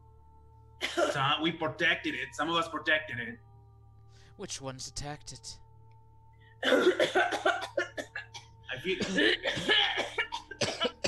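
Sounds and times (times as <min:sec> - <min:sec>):
people coughing: 0:00.8 - 0:01.4, 0:06.6 - 0:11.0
speech: 0:01.1 - 0:03.5, 0:04.4 - 0:05.6, 0:06.6 - 0:08.1, 0:08.7 - 0:10.2.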